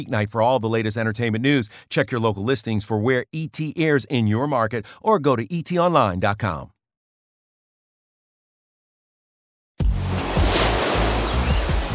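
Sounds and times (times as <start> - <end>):
speech: 0.0 - 6.7
ocean surf waves breaking at the beach: 9.9 - 11.9.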